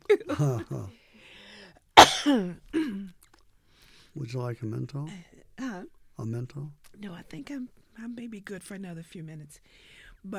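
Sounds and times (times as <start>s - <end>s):
speech: 0.1s - 1.0s, 2.2s - 3.2s, 4.2s - 10.3s
cough muffled into a shirt: 2.0s - 2.9s.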